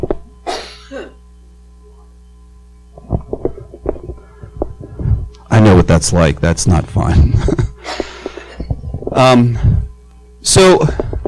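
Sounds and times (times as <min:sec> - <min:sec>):
steady low electrical hum: 0:00.0 - 0:11.2
person coughing: 0:00.4 - 0:01.2
choppy sounds: 0:03.0 - 0:05.5, 0:07.1 - 0:10.0, 0:10.8 - 0:11.2
speech: 0:05.8 - 0:08.0, 0:09.2 - 0:09.6, 0:10.4 - 0:11.0.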